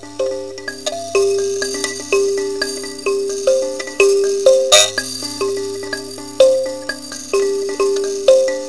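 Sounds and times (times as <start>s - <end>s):
kalimba: 0.0s - 8.6s.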